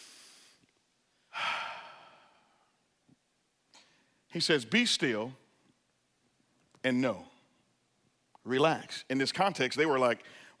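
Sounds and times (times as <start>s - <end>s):
person inhaling and exhaling deeply in a breathing exercise: 0.0s - 0.6s, 1.3s - 2.8s
speech: 4.4s - 5.4s, 6.8s - 7.3s, 8.4s - 10.5s.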